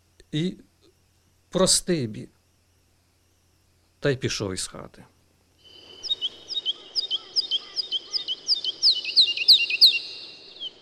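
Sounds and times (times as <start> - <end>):
speech: 0.3 - 0.7, 1.5 - 2.4, 4.0 - 5.1
skylark singing: 5.6 - 10.7.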